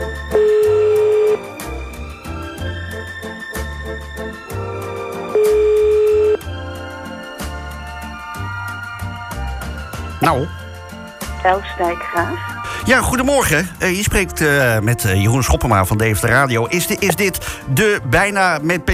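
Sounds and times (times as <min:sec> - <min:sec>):
outgoing-call phone ringback tone during a radio broadcast: 0:00.0 - 0:01.7, 0:05.3 - 0:06.5
rhythmic music: 0:00.0 - 0:18.9
speech: 0:10.3 - 0:10.6, 0:11.4 - 0:18.9.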